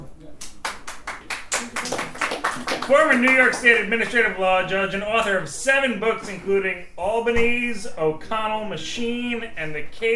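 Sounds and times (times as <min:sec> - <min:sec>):
small audience applauding at a poetry reading: 0:00.6 - 0:03.8
speech: 0:02.9 - 0:10.1.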